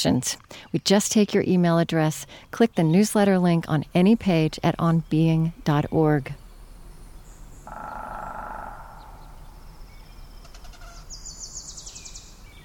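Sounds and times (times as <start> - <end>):
speech: 0.0 - 6.4
sustained mid-pitched bird call outdoors: 5.8 - 12.6
rapid high trilling bird chirps: 7.2 - 12.3.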